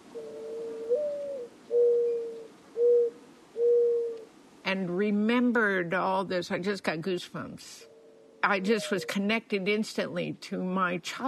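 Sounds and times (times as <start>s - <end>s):
Mourning Dove song cooing: 0.0s - 4.4s, 7.8s - 9.2s
speech: 4.8s - 11.2s.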